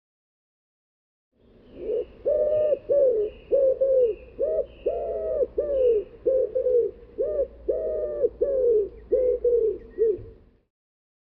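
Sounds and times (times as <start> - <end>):
bird giving low mellow cooing notes: 1.7 - 10.5.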